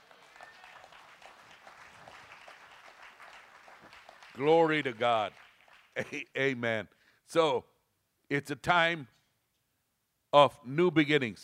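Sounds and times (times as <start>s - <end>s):
congregation clapping in applause: 0.0s - 6.3s
speech: 4.4s - 5.4s, 6.0s - 7.7s, 8.3s - 9.2s, 10.3s - 11.4s.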